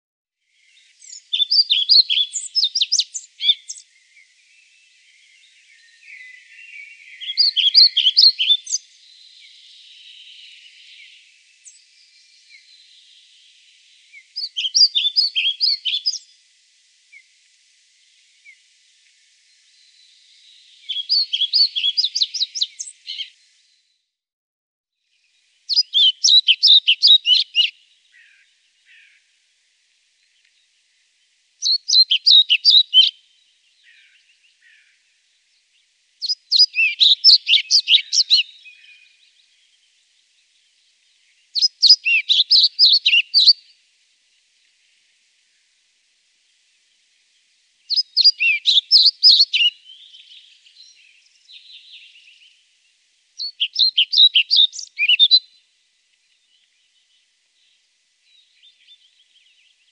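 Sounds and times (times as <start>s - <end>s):
European pied flycatcher calling: 0.6s - 16.4s, 19.7s - 23.4s, 25.7s - 29.3s, 31.6s - 35.1s, 36.2s - 39.9s, 41.3s - 43.8s, 47.9s - 52.6s, 53.4s - 55.6s.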